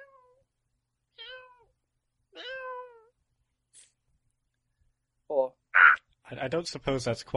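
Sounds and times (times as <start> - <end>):
cat meowing: 0.0 - 0.4, 1.2 - 1.7, 2.3 - 3.1
speech: 6.3 - 7.3.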